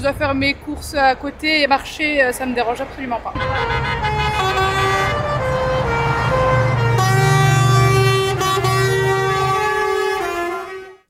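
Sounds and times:
speech: 0.0s - 4.2s
chorus of car horns honking in support: 3.4s - 11.0s.

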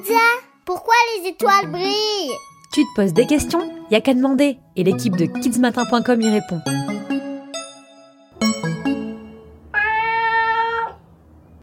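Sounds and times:
speech: 0.0s - 7.1s
cat meowing: 9.7s - 11.0s.

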